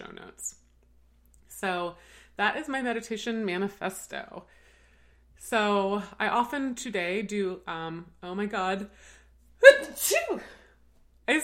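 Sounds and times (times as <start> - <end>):
speech: 1.6 - 4.6, 5.4 - 10.6
loud voiced sneeze: 9.6 - 10.7.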